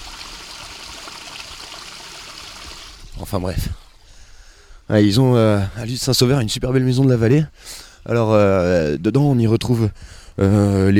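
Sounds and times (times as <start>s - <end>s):
water flowing and rushing through pipes: 0.0s - 3.2s
speech: 3.2s - 3.8s, 4.9s - 10.9s.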